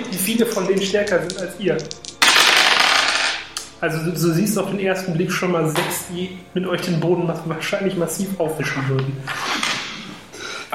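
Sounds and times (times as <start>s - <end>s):
speech: 0.2s - 2.1s, 3.8s - 9.5s
dice rattling and tumbling across a hard surface: 0.8s - 3.4s.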